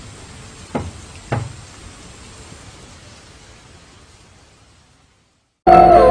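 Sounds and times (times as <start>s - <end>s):
knocking on window glass: 0.7s - 1.6s
speech: 5.7s - 6.0s.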